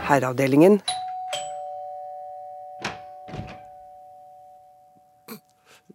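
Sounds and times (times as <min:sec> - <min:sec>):
speech: 0:00.1 - 0:01.0
doorbell chime: 0:00.8 - 0:05.2.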